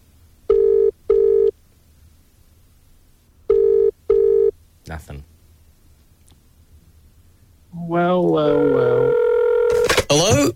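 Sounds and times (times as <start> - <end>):
phone ringback tone: 0.5 - 1.5, 3.5 - 4.5, 8.5 - 9.9.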